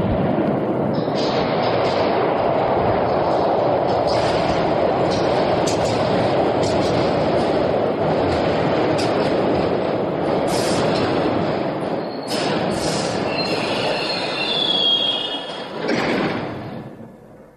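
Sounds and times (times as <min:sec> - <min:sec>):
rumble of rolling train wheels: 0:00.0 - 0:17.5
train brakes squealing as train stops: 0:12.0 - 0:15.7.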